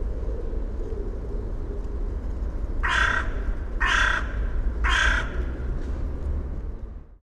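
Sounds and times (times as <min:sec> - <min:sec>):
low rumbling background noise: 0:00.0 - 0:07.2
carrion crow Corvus corone cawing: 0:02.8 - 0:05.6.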